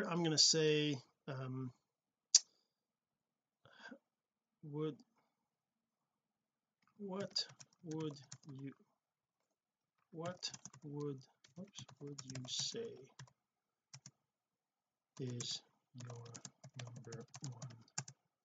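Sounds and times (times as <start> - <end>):
speech: 0.0 - 1.7, 4.6 - 5.0, 7.0 - 8.8, 10.2 - 13.1, 15.2 - 17.8
typing on a computer keyboard: 7.2 - 8.6, 10.2 - 13.3, 14.0 - 14.2, 15.2 - 18.2.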